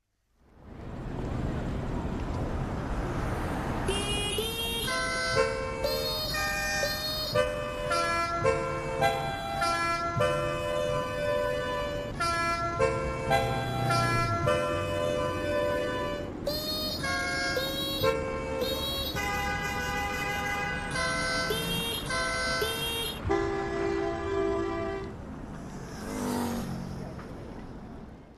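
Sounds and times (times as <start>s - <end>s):
traffic rumble on a six-lane urban motorway in a big city: 0.1s - 28.3s
many car horns honking a tune in a traffic jam on an urban motorway: 3.9s - 25.2s.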